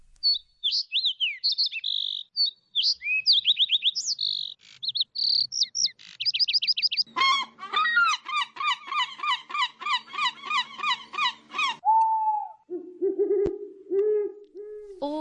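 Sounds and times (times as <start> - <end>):
birds chirping and trilling: 0.0 - 11.9
dense run of repeated rhythmic calls: 0.1 - 15.0.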